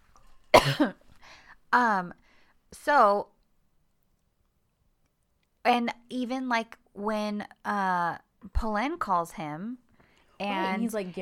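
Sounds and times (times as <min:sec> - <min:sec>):
person clearing a throat thick with phlegm: 0:00.6 - 0:01.0
speech: 0:00.6 - 0:01.0, 0:01.7 - 0:03.3, 0:05.6 - 0:09.8, 0:10.4 - 0:11.1.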